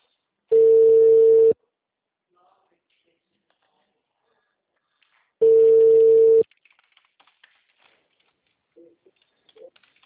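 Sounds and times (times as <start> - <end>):
telephone call ringing tone: 0.5 - 1.6, 5.4 - 6.4.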